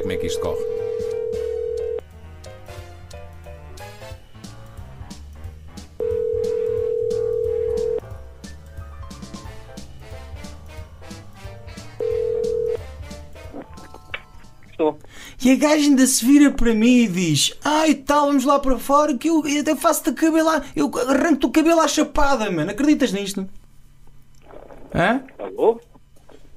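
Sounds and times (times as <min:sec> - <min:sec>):
phone line ringback tones: 0:00.0 - 0:02.0, 0:06.0 - 0:08.0, 0:12.0 - 0:12.8
quieter rhythmic music: 0:00.0 - 0:14.7
speech: 0:00.1 - 0:00.8, 0:15.4 - 0:23.6, 0:25.0 - 0:25.9.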